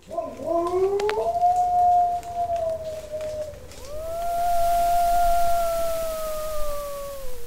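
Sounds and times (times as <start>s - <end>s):
wolf howling: 0.0s - 7.4s.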